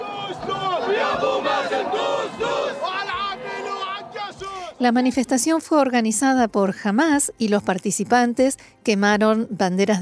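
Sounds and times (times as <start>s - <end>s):
Palestinian protest crowd chanting slogans in the Gaza Strip: 0.0s - 4.9s
speech: 4.8s - 10.0s.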